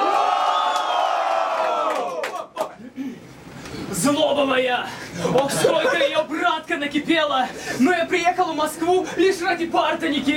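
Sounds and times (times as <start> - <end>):
crowd at a live rap show cheering and shouting: 0.0 - 2.6
speech: 4.0 - 10.3
laughter: 5.2 - 6.4.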